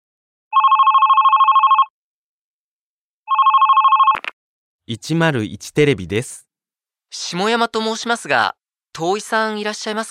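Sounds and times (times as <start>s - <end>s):
telephone ringback on an outgoing call to a company office: 0.5s - 1.9s, 3.3s - 4.2s
speech: 4.9s - 6.4s, 7.1s - 10.0s.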